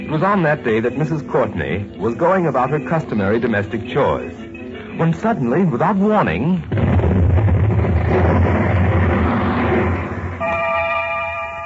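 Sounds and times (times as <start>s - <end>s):
speech: 0.1s - 7.3s
loud deep explosion: 6.7s - 10.4s
steady high ringing tone: 10.4s - 11.6s.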